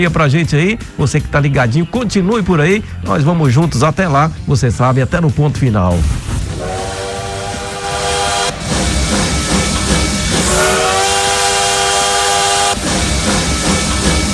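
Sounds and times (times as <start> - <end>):
speech: 0.0 - 6.9
bullet train engines warming up: 5.7 - 14.3
train horn blasts: 6.5 - 8.7, 10.4 - 12.8.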